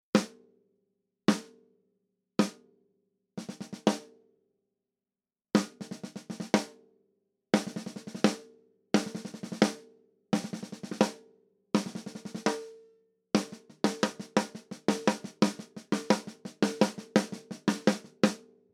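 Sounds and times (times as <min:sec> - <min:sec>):
snare drum: 0:03.4 - 0:04.0, 0:05.6 - 0:06.7, 0:07.6 - 0:08.4, 0:09.0 - 0:09.8, 0:10.4 - 0:11.2, 0:11.8 - 0:12.7, 0:13.4 - 0:18.4.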